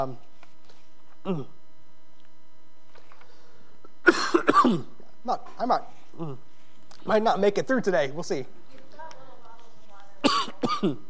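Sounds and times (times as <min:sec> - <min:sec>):
speech: 0:00.0 - 0:00.3, 0:01.2 - 0:01.6, 0:04.1 - 0:08.6, 0:10.2 - 0:11.0
faint steady electrical hum: 0:00.0 - 0:11.0
person with a throat cold coughing: 0:01.2 - 0:01.5, 0:04.0 - 0:05.0, 0:10.2 - 0:11.0
person with a throat cold clearing throat: 0:01.2 - 0:01.6, 0:04.0 - 0:04.9, 0:06.2 - 0:06.4, 0:10.2 - 0:11.0.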